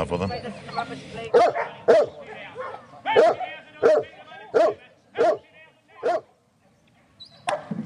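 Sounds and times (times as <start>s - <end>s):
speech: 0.0s - 2.1s
dog barking: 1.3s - 6.3s, 7.5s - 7.7s.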